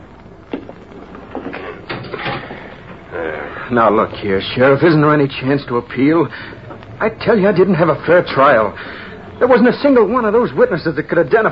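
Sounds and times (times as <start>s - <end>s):
jail cell door unlocking: 1.8s - 2.7s
speech: 3.1s - 11.5s.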